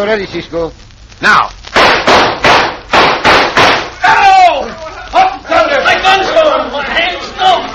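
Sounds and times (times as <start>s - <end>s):
speech: 0.0s - 1.6s
gunshots in a western-style shootout: 1.7s - 4.0s
people shouting excitedly: 3.9s - 7.7s.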